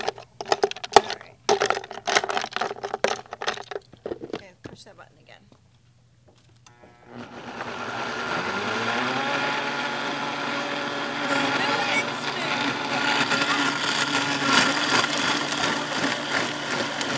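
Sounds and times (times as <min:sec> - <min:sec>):
ice and fruit crunching in blender: 0:00.0 - 0:04.5, 0:06.7 - 0:17.1
blender running: 0:06.7 - 0:17.1.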